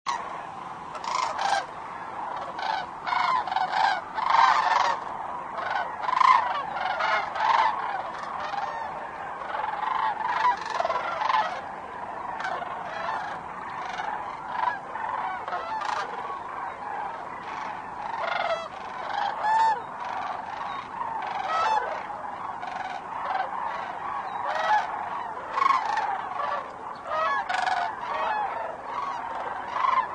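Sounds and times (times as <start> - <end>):
cranes: 0.1 - 30.1.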